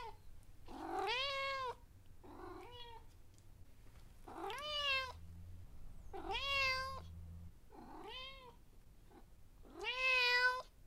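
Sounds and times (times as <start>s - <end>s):
domestic cat meowing: 0.0s - 3.0s, 4.3s - 5.2s, 6.1s - 7.1s, 7.7s - 8.6s, 9.7s - 10.7s
faint low hum: 0.0s - 10.8s.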